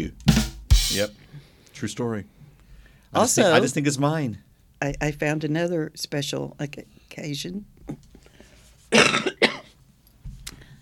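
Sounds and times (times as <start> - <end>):
speech: 0.0 - 0.2, 0.9 - 1.2, 1.8 - 2.4, 3.1 - 8.1
person coughing harshly: 8.9 - 9.8.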